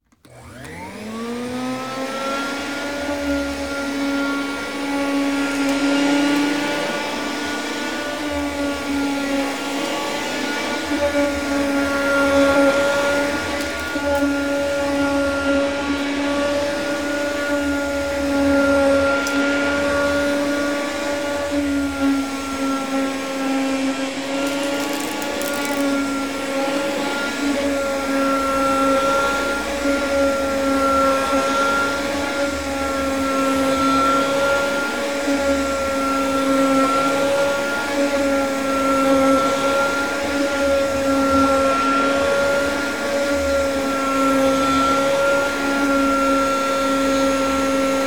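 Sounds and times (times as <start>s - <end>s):
vacuum cleaner: 0.0s - 48.0s.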